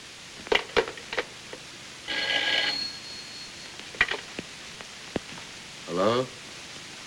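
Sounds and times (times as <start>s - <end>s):
telephone bell ringing: 2.1s - 3.8s
speech: 6.0s - 6.4s.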